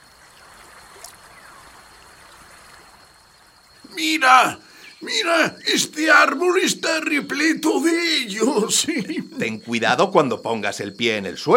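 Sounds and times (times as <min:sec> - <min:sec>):
faint splash of a man wading across the stream: 0:00.0 - 0:03.2
flowing stream water: 0:00.0 - 0:05.2
laughter: 0:03.9 - 0:09.7
speech: 0:03.9 - 0:11.5.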